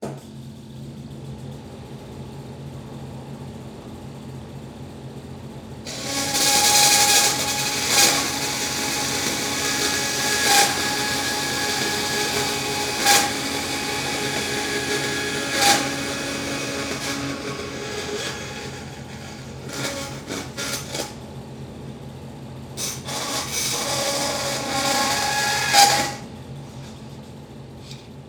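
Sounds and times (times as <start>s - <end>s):
industrial band saw turning on: 5.9s - 21.2s, 22.8s - 26.9s.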